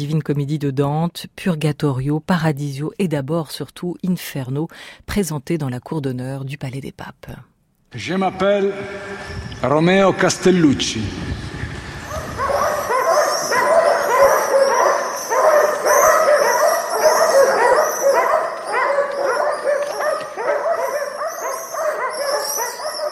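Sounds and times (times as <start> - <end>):
speech: 0.0 - 11.4
several dogs barking and yelping: 11.9 - 23.1.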